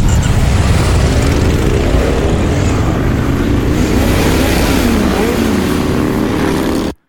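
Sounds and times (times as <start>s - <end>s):
motorcycle engines roaring at a weekend motorcycle gathering in Rüdesheim: 0.0s - 7.0s.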